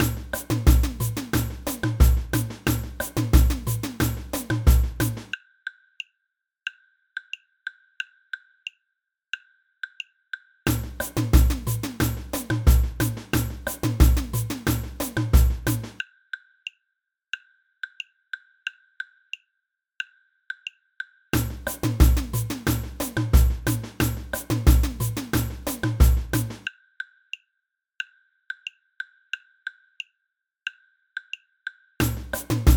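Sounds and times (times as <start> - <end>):
samba band block: 0.0 - 5.3, 10.7 - 16.0, 21.4 - 26.7, 32.0 - 32.7.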